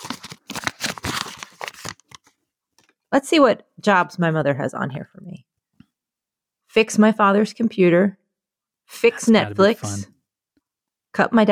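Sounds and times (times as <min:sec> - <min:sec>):
paper being unfolded, crinkling and rustling: 0:00.0 - 0:02.4
speech: 0:03.2 - 0:05.4, 0:06.8 - 0:08.2, 0:08.9 - 0:10.1, 0:11.1 - 0:11.5.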